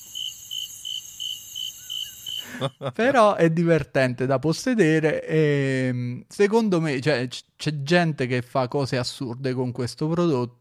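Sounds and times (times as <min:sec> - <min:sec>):
crickets chirping: 0:00.0 - 0:02.8
speech: 0:02.6 - 0:10.5.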